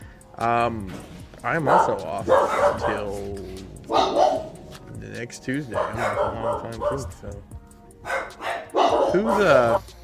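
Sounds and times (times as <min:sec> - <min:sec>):
speech: 0:00.4 - 0:04.3, 0:05.0 - 0:08.2, 0:09.1 - 0:09.9
dog barking: 0:01.6 - 0:04.6, 0:05.7 - 0:07.3, 0:08.0 - 0:09.9.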